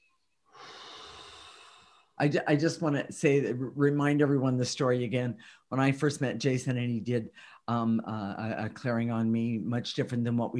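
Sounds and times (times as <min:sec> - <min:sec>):
deep breath drawn in: 0:00.5 - 0:02.2
speech: 0:02.2 - 0:10.5.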